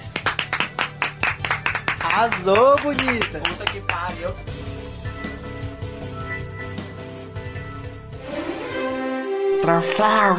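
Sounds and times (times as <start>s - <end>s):
one or two people clapping: 0.0s - 4.3s
speech: 2.2s - 4.6s, 9.6s - 10.3s.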